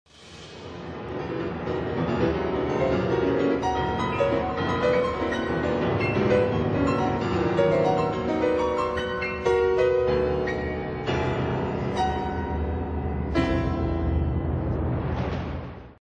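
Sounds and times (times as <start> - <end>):
solo piano: 0.7 - 16.0.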